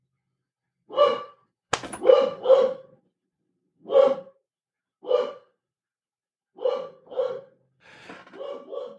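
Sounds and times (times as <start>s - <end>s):
dog barking: 0.9s - 1.4s, 2.0s - 3.0s, 3.8s - 4.4s, 5.0s - 5.6s, 6.6s - 7.6s, 8.4s - 8.9s.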